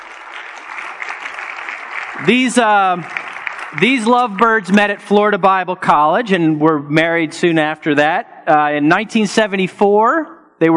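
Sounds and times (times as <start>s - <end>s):
audience clapping for a pastor couple introduced as panelists: 0.0s - 5.2s
speech: 2.2s - 10.7s.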